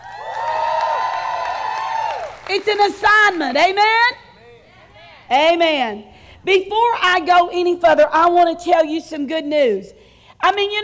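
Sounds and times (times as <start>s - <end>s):
audience cheering with shouts and whoops: 0.0s - 5.3s
speech: 2.5s - 4.2s, 5.3s - 10.8s.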